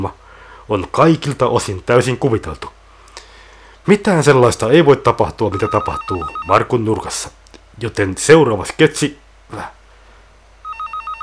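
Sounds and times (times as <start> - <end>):
speech: 0.0 - 2.8, 3.8 - 9.8
telephone ringing with an electronic trill: 5.5 - 6.6, 10.6 - 11.2.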